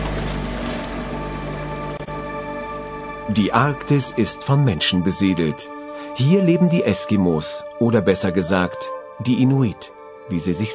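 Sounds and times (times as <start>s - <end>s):
motorboat engine droning in the Arctic: 0.0s - 5.7s
speech: 3.3s - 10.7s.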